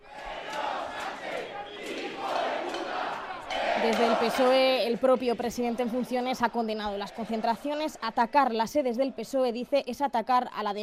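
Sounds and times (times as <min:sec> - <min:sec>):
large protest crowd chanting slogans in unison: 0:00.0 - 0:09.5
speech: 0:03.8 - 0:10.8.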